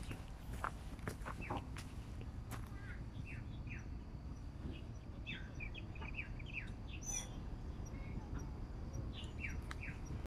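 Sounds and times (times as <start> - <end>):
low background rumble: 0.0 - 10.2
White-browed laughingthrush chirping calls: 2.8 - 10.2.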